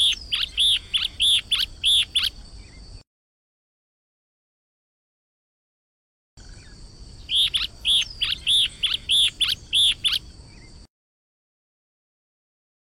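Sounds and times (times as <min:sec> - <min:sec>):
Yellow-bellied elaenia song: 0:00.0 - 0:03.0, 0:06.4 - 0:10.9.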